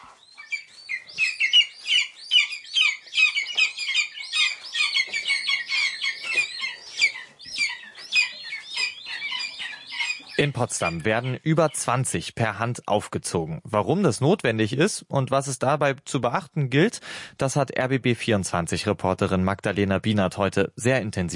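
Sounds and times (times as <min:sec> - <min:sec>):
hungry lesser spotted eagle chicks calling at a hand-rearing station near Potsdam: 0:00.0 - 0:12.3
speech: 0:10.4 - 0:21.3.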